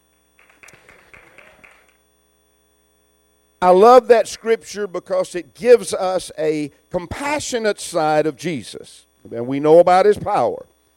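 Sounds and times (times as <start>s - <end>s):
low steady hum: 0.0s - 10.9s
group hand clapping in praise: 0.4s - 2.0s
speech: 3.6s - 10.7s.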